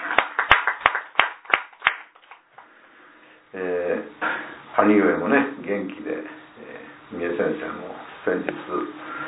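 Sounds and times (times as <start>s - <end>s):
applause from a small audience: 0.0s - 2.4s
speech: 4.8s - 6.4s, 7.1s - 9.2s.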